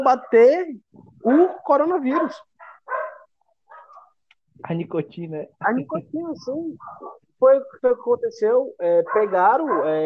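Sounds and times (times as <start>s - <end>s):
speech: 0.0s - 2.5s, 4.6s - 10.0s
dogs barking sharply: 2.1s - 4.2s, 6.8s - 7.3s, 9.1s - 10.0s.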